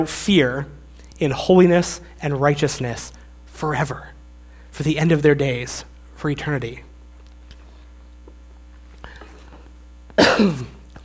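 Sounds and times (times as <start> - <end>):
speech: 0.0 - 4.2, 4.8 - 6.9, 10.2 - 10.7
harsh cough rolling into throat clearing: 10.2 - 10.9.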